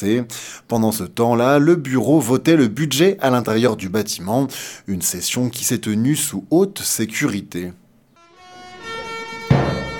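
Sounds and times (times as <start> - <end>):
speech: 0.0 - 7.8
car horns honking at a protest: 8.2 - 9.9.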